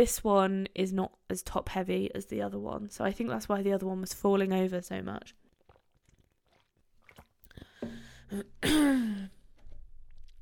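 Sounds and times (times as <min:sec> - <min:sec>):
speech: 0:00.0 - 0:05.4, 0:08.3 - 0:09.4
person drinking water from a bottle: 0:05.3 - 0:10.4
gulp: 0:05.4 - 0:10.4.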